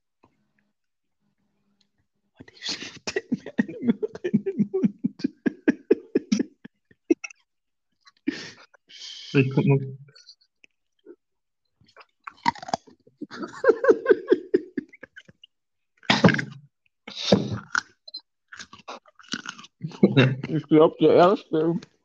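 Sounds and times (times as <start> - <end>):
speech: 2.4 - 2.9, 9.4 - 10.1, 20.2 - 21.9
soft whispering: 2.4 - 6.5, 8.3 - 10.3
laughter: 2.5 - 7.3, 13.2 - 15.3, 19.9 - 20.7
chewing: 11.8 - 13.2, 17.6 - 19.9
crunchy bites into crisp food: 12.2 - 12.9.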